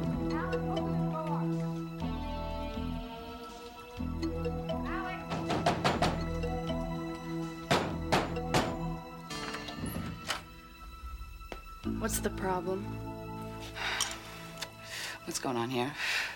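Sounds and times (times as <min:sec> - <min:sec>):
steady tonal background: 0:00.0 - 0:16.3
dull knocking on a door: 0:05.3 - 0:06.4, 0:07.7 - 0:09.0.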